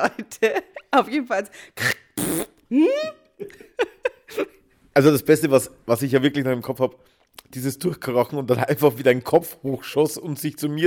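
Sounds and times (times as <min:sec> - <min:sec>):
speech: 0:00.0 - 0:03.6, 0:04.3 - 0:10.8
loud fart: 0:02.2 - 0:02.6.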